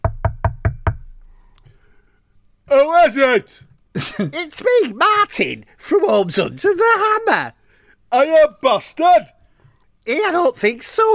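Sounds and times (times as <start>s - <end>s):
knocking on a house door: 0.0s - 1.2s
speech: 2.7s - 9.4s, 10.0s - 11.1s.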